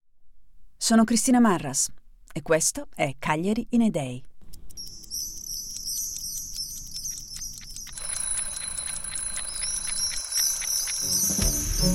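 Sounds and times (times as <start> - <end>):
speech: 0.8 - 4.3
alarm clock ringing in the morning: 7.9 - 11.9.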